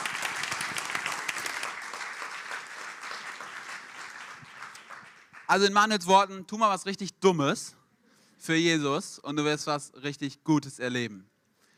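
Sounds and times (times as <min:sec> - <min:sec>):
crowd applauding: 0:00.0 - 0:05.7
speech: 0:05.5 - 0:07.8, 0:08.4 - 0:11.3.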